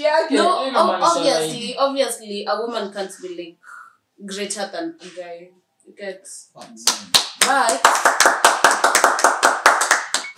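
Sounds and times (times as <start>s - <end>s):
speech: 0.0s - 9.3s
men clapping hands in a brisk steady rhythm: 6.8s - 10.3s.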